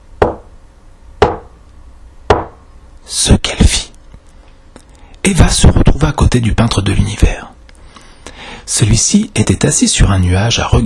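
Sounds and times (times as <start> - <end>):
knocking on a wooden door before entering: 0.2 - 0.5, 1.2 - 1.5, 2.3 - 2.6
speech: 5.3 - 7.6, 8.7 - 10.8.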